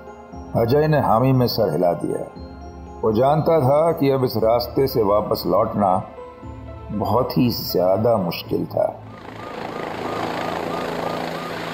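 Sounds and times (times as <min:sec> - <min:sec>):
speech: 0:00.5 - 0:06.2, 0:06.9 - 0:09.4
helicopter rotor thrumming as it arrives on a hotel rooftop: 0:09.0 - 0:11.7.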